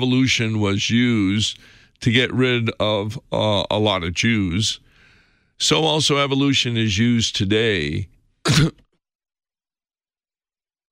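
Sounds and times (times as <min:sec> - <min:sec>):
speech: 0:00.0 - 0:04.8, 0:05.6 - 0:08.8
single short throaty raspy cough: 0:08.4 - 0:09.0.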